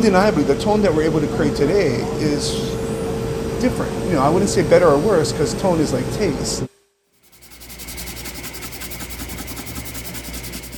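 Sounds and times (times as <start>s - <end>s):
speech: 0.0s - 2.8s, 3.6s - 6.7s
hand sanding a small koa hardwood ukulele bridge: 7.2s - 10.7s.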